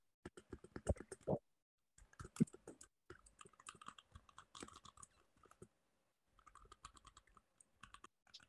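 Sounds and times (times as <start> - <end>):
typing on a computer keyboard: 0.2 - 1.3, 2.0 - 5.7, 6.4 - 8.4.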